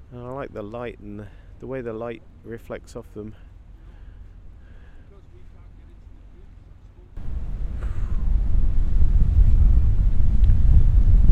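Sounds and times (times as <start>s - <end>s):
speech: 0.1s - 3.5s
cold wind blowing with sleet and wet snow: 7.2s - 11.3s.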